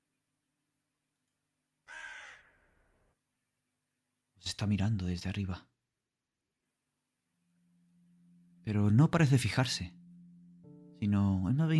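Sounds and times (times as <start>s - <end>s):
crow cawing: 1.8s - 3.1s
speech: 4.6s - 5.7s, 8.7s - 10.0s, 11.0s - 11.7s.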